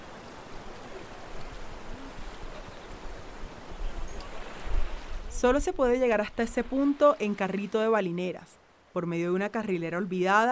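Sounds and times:
gusty wind buffeting the microphone: 0.0 - 6.8
surf and rushing water at river mouth: 0.0 - 10.4
speech: 5.4 - 10.4.

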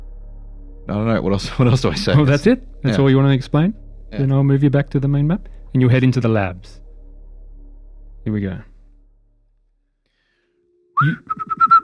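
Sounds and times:
speech: 0.9 - 6.8, 8.2 - 8.7, 11.0 - 11.6
person whistling a short bright tune while walking: 11.0 - 11.8.

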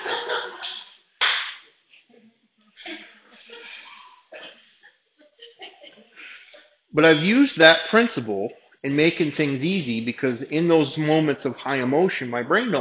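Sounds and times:
people laughing: 0.0 - 0.9, 2.7 - 7.5
loud crisp slap: 0.6 - 1.6
speech: 7.0 - 12.8.

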